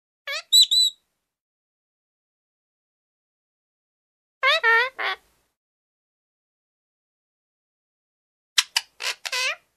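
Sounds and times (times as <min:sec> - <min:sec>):
parrot sounds: 0:00.3 - 0:01.0, 0:04.4 - 0:05.3, 0:08.6 - 0:09.7.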